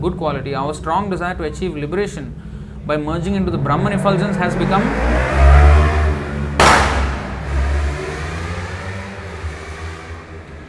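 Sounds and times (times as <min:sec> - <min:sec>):
speech: 0:00.0 - 0:05.7
loud motorbike engine revving past: 0:03.3 - 0:10.6.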